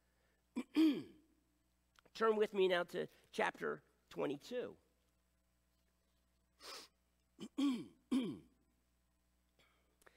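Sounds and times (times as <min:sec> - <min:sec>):
throaty coughs: 0:00.6 - 0:01.2, 0:07.4 - 0:08.6
speech: 0:02.2 - 0:04.8, 0:06.6 - 0:08.5
faint breath: 0:09.6 - 0:10.1.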